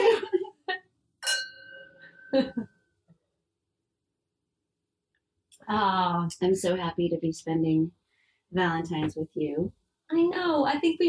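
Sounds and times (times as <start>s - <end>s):
wine glasses clinking in a toast: 1.2s - 2.6s
speech: 2.3s - 2.7s, 5.7s - 11.0s.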